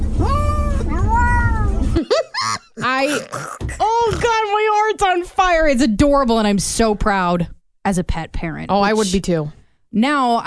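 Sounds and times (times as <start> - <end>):
low hum: 0.0 - 10.4
cat meowing that sounds like hello: 0.2 - 1.9
speech: 3.0 - 10.4.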